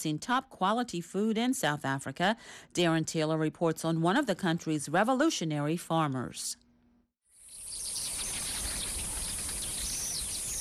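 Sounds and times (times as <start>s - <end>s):
speech: 0.0s - 6.6s
birds chirping: 7.4s - 10.5s
cicadas buzzing: 7.4s - 10.5s.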